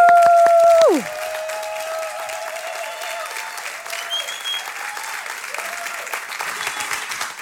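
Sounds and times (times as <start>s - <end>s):
large crowd applauding: 0.0s - 7.4s.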